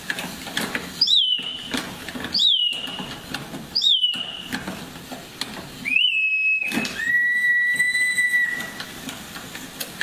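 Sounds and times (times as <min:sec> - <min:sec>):
clockwork mechanical bird whistle singing: 0:01.0 - 0:01.7, 0:02.3 - 0:03.0, 0:03.8 - 0:04.5, 0:05.8 - 0:08.8.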